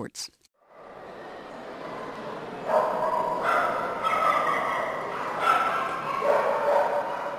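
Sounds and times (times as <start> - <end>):
speech: 0.0 - 0.4
chorus of dogs barking and yipping at a dog show: 2.7 - 7.3.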